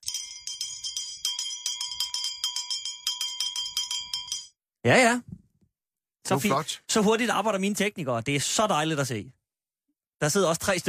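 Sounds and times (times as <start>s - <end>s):
bell ringing rapidly: 0.0s - 4.6s
speech: 4.8s - 5.4s, 6.3s - 9.4s, 10.2s - 10.8s.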